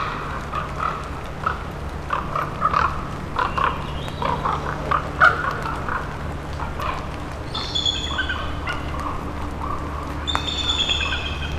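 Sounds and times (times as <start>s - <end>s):
boat engine hum on a river in Sitka Alaska: 0.0s - 11.5s
jungle birds chirping and warbling in Sitka Alaska: 2.8s - 11.5s
rising whistle-like bird call: 10.3s - 11.5s.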